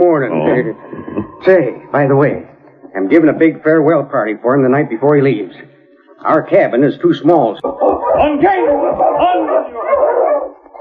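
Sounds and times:
laughter: 0.0s - 2.3s, 7.6s - 10.3s
speech: 0.1s - 9.9s
several dogs barking and yipping excitedly: 7.6s - 10.7s.

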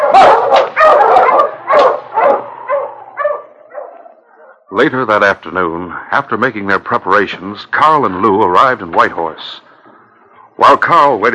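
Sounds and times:
pack of sled dogs barking and yipping as the team sets off: 0.0s - 4.6s
speech: 4.8s - 9.7s, 10.6s - 11.3s.

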